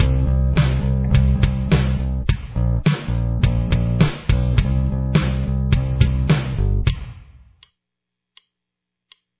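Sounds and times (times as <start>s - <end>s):
bass intro: 0.0s - 7.1s.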